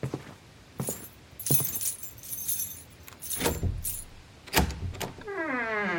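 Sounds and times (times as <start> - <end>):
keys jangling: 0.8 - 4.2
lock being worked: 3.1 - 5.1
door creaking open: 3.3 - 5.9.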